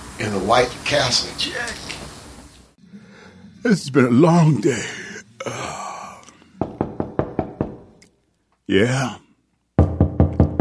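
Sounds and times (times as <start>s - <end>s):
speech: 0.2s - 2.0s, 3.6s - 5.8s, 8.7s - 9.2s
knocking on a wooden door: 6.6s - 7.9s, 9.8s - 10.6s.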